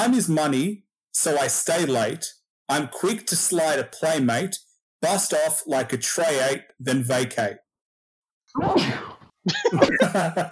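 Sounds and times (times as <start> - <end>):
speech: 0.0 - 7.6, 8.5 - 10.5
two-part sneeze with voiced intake: 8.6 - 9.3
laughter: 9.5 - 10.5.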